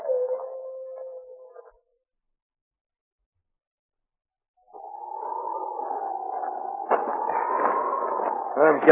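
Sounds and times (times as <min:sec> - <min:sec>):
wolves howling: 0:00.0 - 0:01.7, 0:04.6 - 0:08.9.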